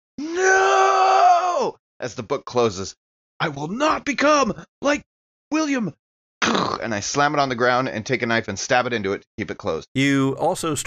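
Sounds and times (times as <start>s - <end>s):
man's strangled scream to get away from something haunting him in a dream: 0.2s - 1.8s
speech: 1.6s - 10.8s.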